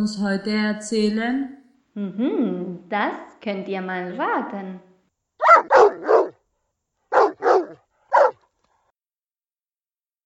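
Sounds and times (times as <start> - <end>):
speech: 0.0 - 4.9
dog barking: 5.4 - 6.4, 7.1 - 8.4.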